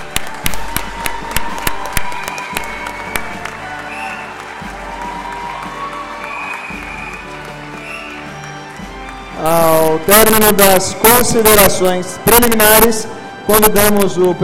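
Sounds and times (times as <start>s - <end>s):
audience applauding: 0.0s - 10.5s
speech: 9.4s - 14.4s.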